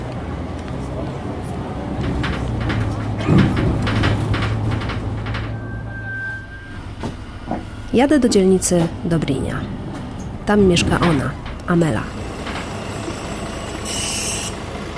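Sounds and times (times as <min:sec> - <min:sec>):
bus engine rumble inside a city bus: 0:00.0 - 0:14.9
clunks inside a city bus: 0:01.9 - 0:14.9
bus door sliding: 0:02.0 - 0:09.0, 0:09.7 - 0:14.5
short electronic beep: 0:05.6 - 0:06.9
speech: 0:08.0 - 0:09.8, 0:10.5 - 0:12.2.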